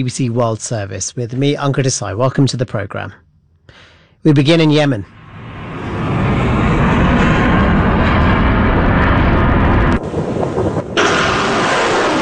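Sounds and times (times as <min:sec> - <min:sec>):
speech: 0:00.0 - 0:05.2
wind buffeting: 0:05.1 - 0:12.2
missiles being fired in a port city: 0:05.2 - 0:12.2.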